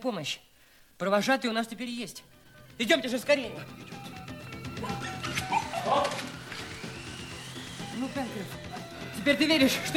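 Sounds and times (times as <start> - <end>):
steady hiss: 0.0 - 2.8
speech: 0.0 - 4.1, 8.0 - 8.6, 9.2 - 9.9
dog whining and whimpering: 4.8 - 6.3.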